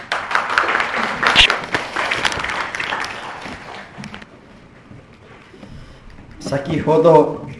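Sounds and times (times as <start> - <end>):
room full of people applauding: 0.0 - 4.2
speech: 6.5 - 7.5.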